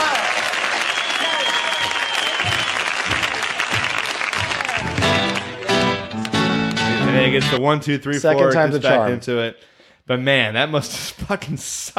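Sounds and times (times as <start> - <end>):
audience applause: 0.0 - 7.2
crowd voices: 2.4 - 7.6
speech: 7.3 - 11.9.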